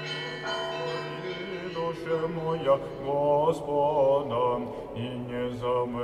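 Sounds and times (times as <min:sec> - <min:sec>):
several large Russian church bells ringing: 0:00.0 - 0:04.8.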